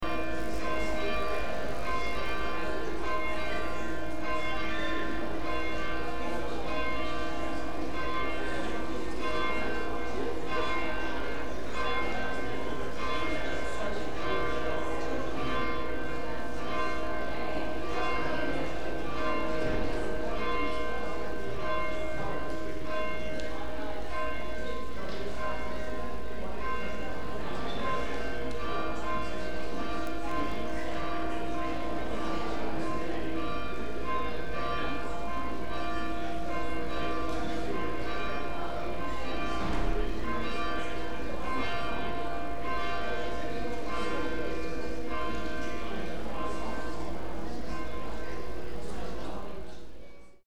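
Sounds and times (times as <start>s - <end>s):
bells at Fawley: 0.0s - 49.6s.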